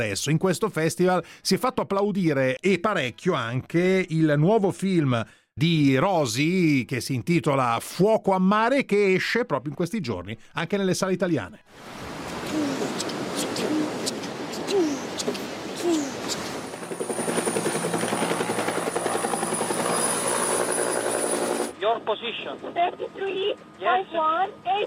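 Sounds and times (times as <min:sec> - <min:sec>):
speech: 0:00.0 - 0:12.7, 0:21.8 - 0:24.8
sea sounds: 0:11.7 - 0:17.6
helicopter rotor droning: 0:16.0 - 0:24.8
coast guard radio voice asking for position: 0:21.8 - 0:24.8.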